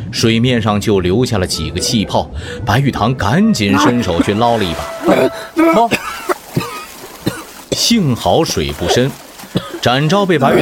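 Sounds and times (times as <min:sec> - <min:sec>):
speech: 0:00.1 - 0:06.1, 0:07.8 - 0:10.6
person coughing after choking on water: 0:03.8 - 0:07.8, 0:08.8 - 0:09.8.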